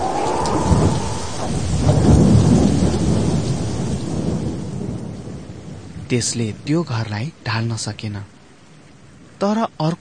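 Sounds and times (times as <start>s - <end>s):
thunder rolling during a storm: 0.0s - 6.1s
heavy rain during a storm: 0.0s - 9.9s
wind during a thunderstorm: 0.0s - 9.9s
speech: 6.1s - 8.4s, 9.4s - 9.9s.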